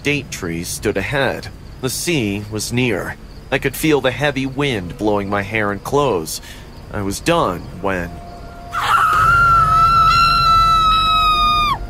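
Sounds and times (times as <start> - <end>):
speech: 0.0 - 8.2
woman screaming on a sandy trail near the sea at night: 8.7 - 11.8.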